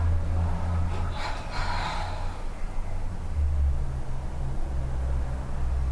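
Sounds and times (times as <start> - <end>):
steady low hum: 0.0 - 5.8
double exhale during a breathing exercise: 0.9 - 2.7.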